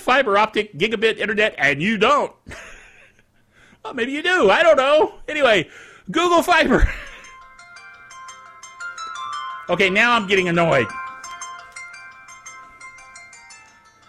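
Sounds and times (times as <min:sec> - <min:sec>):
speech: 0:00.1 - 0:02.8, 0:03.8 - 0:07.1, 0:09.7 - 0:11.0
phone ringtone playing a repeating electronic melody: 0:07.0 - 0:14.0.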